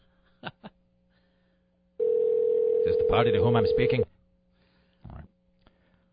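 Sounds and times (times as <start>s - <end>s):
faint steady hum: 0.0s - 6.1s
telephone keypad tones: 2.0s - 4.0s
speech: 3.1s - 4.1s.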